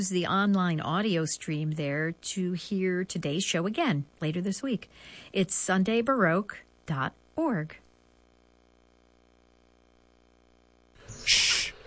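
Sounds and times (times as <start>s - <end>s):
speech: 0.0s - 7.8s, 11.2s - 11.4s
red-bellied woodpecker call: 11.0s - 11.8s.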